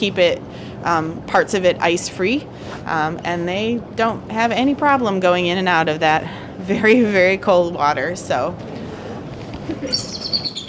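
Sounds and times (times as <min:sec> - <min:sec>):
speech: 0:00.0 - 0:08.7, 0:09.7 - 0:10.6
steady low noise: 0:00.0 - 0:10.6
bald eagle calling at a zoo in winter: 0:09.8 - 0:10.6.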